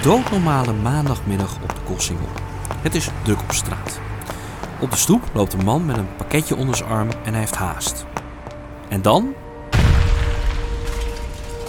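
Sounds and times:
speech: 0.0s - 4.1s, 4.8s - 8.3s, 8.9s - 9.4s
heavy explosion on a busy street in Rotterdam: 9.7s - 11.6s.

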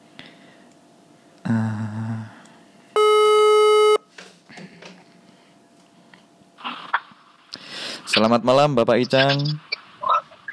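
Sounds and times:
telephone ringback tone on outgoing call: 3.0s - 4.0s
speech: 8.2s - 9.6s.

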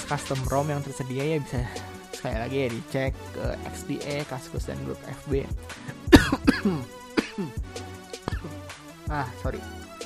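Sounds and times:
speech: 0.1s - 7.9s, 9.1s - 9.8s
person coughing: 5.8s - 7.6s, 8.3s - 8.6s.

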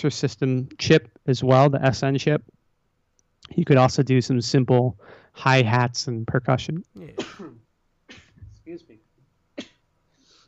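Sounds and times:
speech: 0.0s - 2.6s, 3.5s - 8.9s
quiet breathing: 5.0s - 5.4s, 10.1s - 10.4s
person sneezing: 7.0s - 8.4s.

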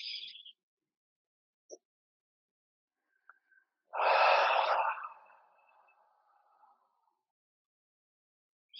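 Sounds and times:
forceful voiced exhale during a lung-cleansing breathing exercise: 4.0s - 5.1s
hissy breaths: 4.0s - 5.4s.

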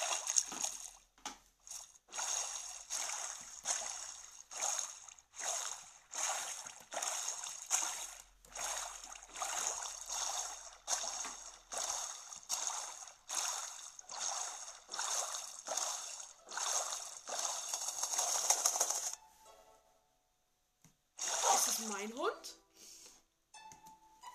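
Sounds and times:
water splashing in a video game as a character jumps out of a boat: 0.0s - 19.2s, 21.2s - 22.2s.

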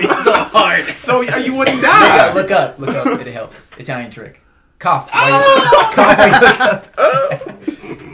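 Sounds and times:
laughter: 0.0s - 3.3s, 5.4s - 8.1s
speech: 0.0s - 7.8s
person acting out a coughing fit with choking gasps: 0.8s - 3.2s.

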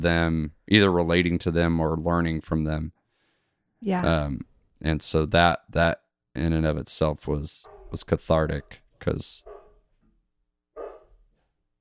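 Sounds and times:
speech: 0.0s - 3.0s, 3.8s - 9.6s
dog barking: 7.6s - 9.9s, 10.8s - 11.2s.

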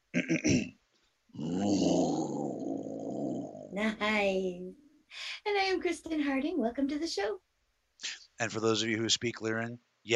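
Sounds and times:
speech: 0.2s - 0.8s, 3.7s - 10.1s
person imitating a roar with their voice: 1.4s - 3.8s.

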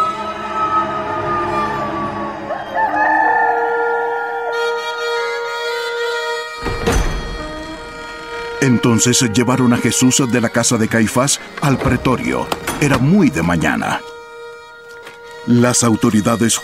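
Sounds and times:
rooster crowing: 0.1s - 5.3s
sharp thump: 6.6s - 8.1s
speech: 8.6s - 14.1s, 15.5s - 16.6s.

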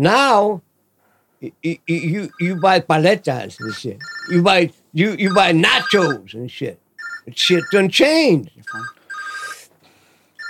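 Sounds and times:
speech: 0.0s - 0.7s, 1.4s - 9.0s
telephone ringing electronically: 2.2s - 2.8s, 3.6s - 4.5s, 5.2s - 6.2s, 7.0s - 7.9s, 8.7s - 9.7s.

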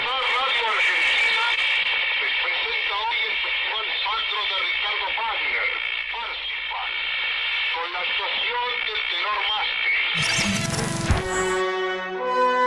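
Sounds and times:
crackly tinny voice of a recreated early radio broadcast announcer: 0.0s - 7.1s, 7.7s - 11.5s
fuller clearer burst of musical tone: 10.2s - 12.6s.

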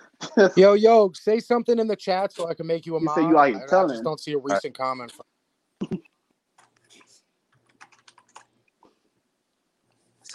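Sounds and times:
speech: 0.4s - 5.3s
computer keyboard typing: 6.6s - 8.6s.

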